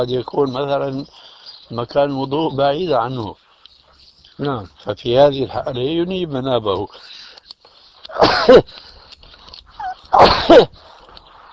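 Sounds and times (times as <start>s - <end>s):
speech: 0.0s - 3.4s, 4.4s - 7.2s, 8.1s - 8.9s, 10.1s - 10.9s
person sneezing: 8.1s - 8.7s, 9.8s - 10.8s.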